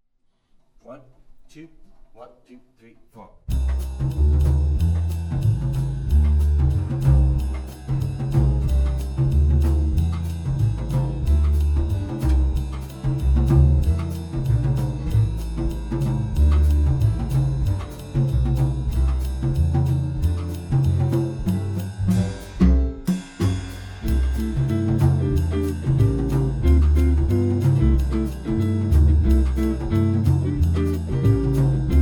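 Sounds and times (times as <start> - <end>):
latin etude rhythm section: 3.5 - 32.0.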